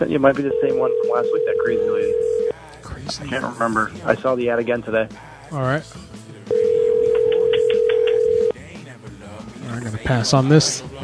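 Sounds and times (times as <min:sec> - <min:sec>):
speech: 0:00.0 - 0:06.2, 0:09.8 - 0:11.0
ringback tone of an outgoing telephone call: 0:00.3 - 0:02.5, 0:06.5 - 0:08.5.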